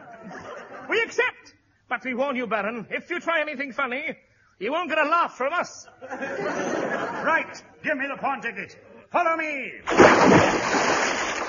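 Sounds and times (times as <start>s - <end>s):
laughter: 0.0s - 0.9s, 5.9s - 7.6s
speech: 0.9s - 10.9s
water splashing as people plunge into the Atlantic Ocean: 9.9s - 11.4s.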